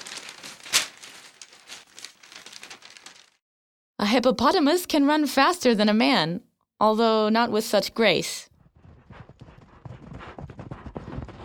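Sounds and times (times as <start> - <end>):
paper being folded, crinkling and rustling: 0.0 - 3.4
speech: 4.1 - 8.5.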